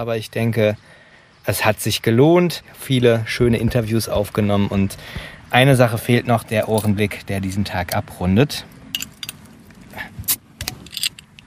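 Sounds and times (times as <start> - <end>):
speech: 0.0 - 8.7
light glassy clinks and taps of a beer bottle: 9.0 - 9.4.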